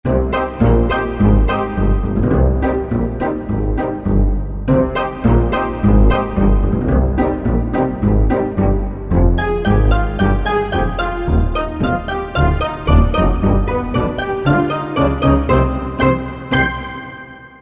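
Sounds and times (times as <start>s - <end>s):
pizzicato strings: 0.1s - 17.3s.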